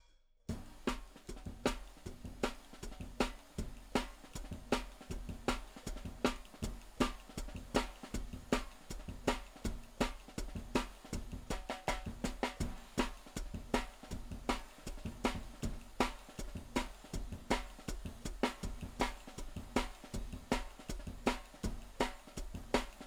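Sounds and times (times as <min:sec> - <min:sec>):
hi-hat in a drum and bass jungle beat: 0:00.5 - 0:23.0.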